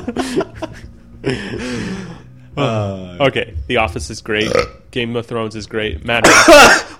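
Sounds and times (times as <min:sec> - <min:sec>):
laughter: 0:00.0 - 0:02.1, 0:06.2 - 0:06.9
speech: 0:00.1 - 0:00.6, 0:01.2 - 0:06.9
coughing: 0:06.2 - 0:06.9.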